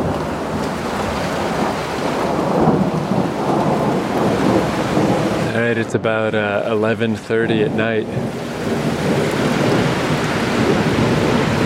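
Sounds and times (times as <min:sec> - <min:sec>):
deep continuous rumble of thunder: 0:00.0 - 0:11.6
heavy rain from a thunderstorm outside a house at night: 0:00.0 - 0:11.6
speech: 0:05.7 - 0:08.8.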